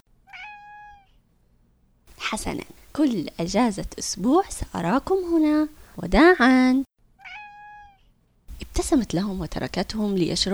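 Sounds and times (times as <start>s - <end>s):
cat meowing: 0.3s - 1.2s, 7.2s - 8.6s
speech: 2.3s - 6.8s, 8.8s - 10.5s.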